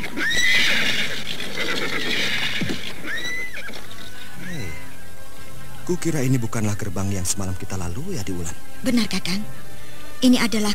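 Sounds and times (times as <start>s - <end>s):
hoofbeats of horses being ridden: 0.0s - 4.8s
horses whinnying: 0.0s - 5.0s
speech: 5.9s - 10.7s.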